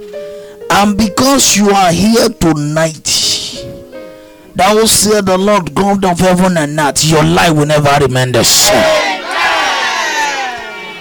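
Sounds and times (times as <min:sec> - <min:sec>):
speech: 0:00.0 - 0:03.3, 0:04.6 - 0:09.2
audience shouting in response: 0:08.5 - 0:11.0.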